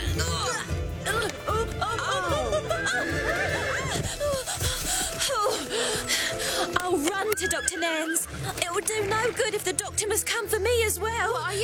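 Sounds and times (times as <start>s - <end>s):
laughter: 1.1s - 9.6s
pony whinnying: 1.9s - 4.7s, 7.0s - 9.4s
speech: 7.5s - 11.6s.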